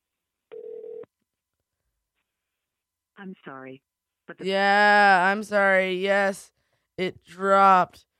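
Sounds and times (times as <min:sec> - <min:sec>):
telephone ringing tone: 0:00.5 - 0:01.1
speech: 0:03.2 - 0:08.1.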